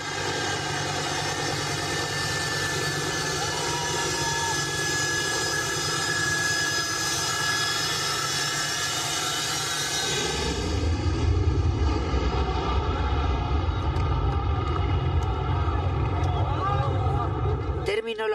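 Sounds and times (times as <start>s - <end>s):
aircraft engine roar on a full evacuation flight in Afghanistan: 0.0s - 18.3s.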